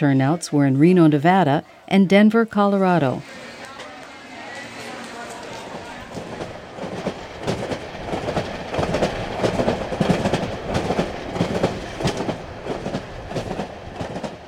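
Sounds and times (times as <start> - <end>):
speech: 0.0 - 3.4
passenger train wheels clattering on rails: 3.2 - 14.4.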